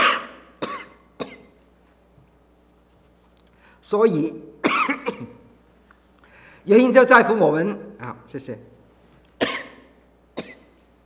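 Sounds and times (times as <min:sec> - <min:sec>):
person with a lingering month-long cough coughing: 0:00.0 - 0:01.6, 0:04.6 - 0:05.5, 0:09.4 - 0:10.8
speech: 0:03.8 - 0:04.6, 0:06.6 - 0:08.8.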